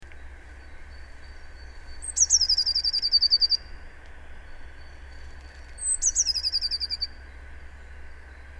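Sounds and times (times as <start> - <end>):
steady background hum: 0.0 - 8.5
Eurasian blue tit Cyanistes caeruleus trilling: 0.6 - 3.7, 4.8 - 7.2.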